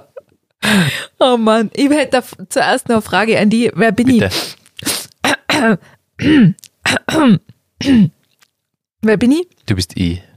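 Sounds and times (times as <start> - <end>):
speech: 0.7 - 4.6, 5.6 - 8.2, 9.0 - 10.3
person clearing throat: 5.3 - 8.2.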